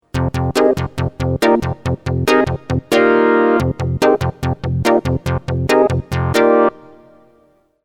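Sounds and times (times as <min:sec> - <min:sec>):
Memorymoog synthesizer: 0:00.0 - 0:07.6.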